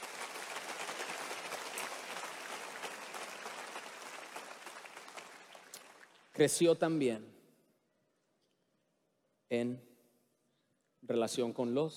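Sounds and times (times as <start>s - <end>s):
crowd applauding: 0.0s - 6.4s
speech: 6.4s - 7.3s, 9.5s - 9.9s, 11.1s - 11.9s.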